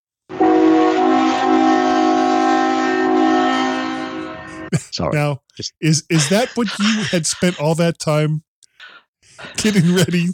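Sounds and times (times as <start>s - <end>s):
loud sustained train horn blaring: 0.3s - 4.7s
laughter: 4.2s - 8.3s, 8.9s - 10.3s
speech: 5.0s - 8.5s, 9.4s - 10.3s.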